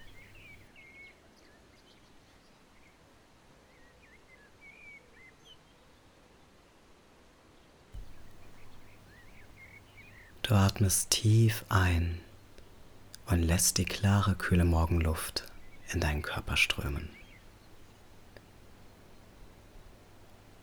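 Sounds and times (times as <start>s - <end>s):
birds singing at dawn: 0.0s - 0.6s, 8.0s - 20.6s
hissing outdoor background: 0.0s - 0.7s, 8.0s - 20.6s
speech: 10.5s - 12.2s, 13.3s - 17.2s.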